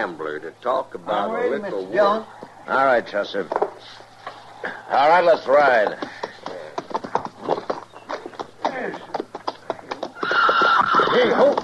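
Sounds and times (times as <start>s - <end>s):
speech: 0.0s - 6.2s
horse hoof thumps and shuffling: 3.5s - 11.6s
horse neighing: 10.2s - 11.6s.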